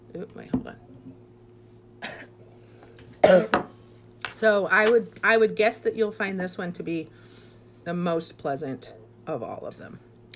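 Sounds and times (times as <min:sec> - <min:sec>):
low steady hum: 0:00.0 - 0:10.3
speech: 0:00.1 - 0:01.3, 0:03.2 - 0:03.6, 0:04.4 - 0:07.2, 0:07.9 - 0:10.1
person coughing after sipping whiskey: 0:03.2 - 0:03.7.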